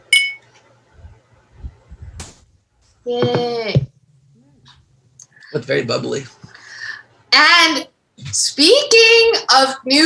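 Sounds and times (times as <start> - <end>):
glasses clinking in a toast: 0.0 - 0.5
speech: 3.0 - 3.8, 5.5 - 6.4, 7.4 - 10.0.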